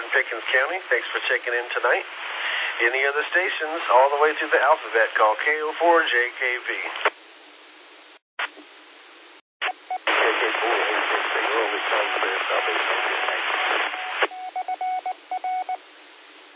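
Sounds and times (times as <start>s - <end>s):
noisy radio static from a keyed transmission: 0.0s - 7.2s, 8.4s - 8.6s, 9.6s - 14.3s
speech: 0.2s - 7.1s
repeater Morse code identifier beeps: 14.0s - 15.8s.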